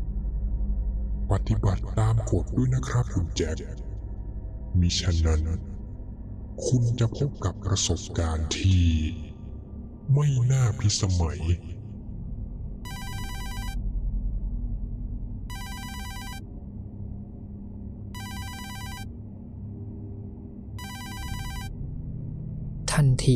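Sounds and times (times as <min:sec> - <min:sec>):
steady low rumble: 0:00.0 - 0:23.3
speech: 0:01.3 - 0:03.9, 0:04.8 - 0:05.7, 0:06.6 - 0:09.2, 0:10.1 - 0:11.7
mobile phone ringing with bright electronic trills: 0:12.9 - 0:13.8, 0:15.5 - 0:16.4, 0:18.2 - 0:19.1, 0:20.8 - 0:21.7.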